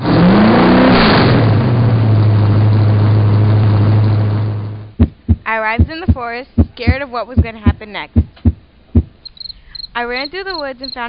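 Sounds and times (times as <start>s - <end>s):
car engine starting and revving up with a rising whine: 0.0s - 5.0s
speech: 5.6s - 8.2s, 10.0s - 11.0s.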